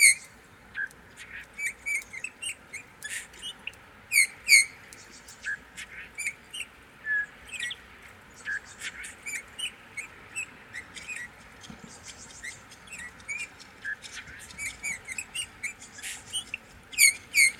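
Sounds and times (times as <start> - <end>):
high clicking and chipping: 0.0 - 5.6
Eurasian bullfinch Pyrrhula pyrrhula piping calls: 0.0 - 17.5.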